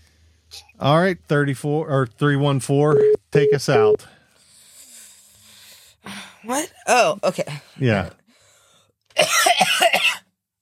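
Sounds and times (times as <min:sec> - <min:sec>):
speech: 0:00.5 - 0:04.2, 0:06.4 - 0:08.2
person coughing with chesty hacks: 0:09.2 - 0:10.3.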